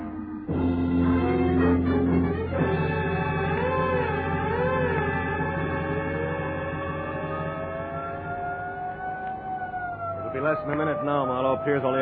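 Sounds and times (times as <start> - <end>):
police car siren wailing: 0.0 - 12.0
speech: 10.4 - 12.0.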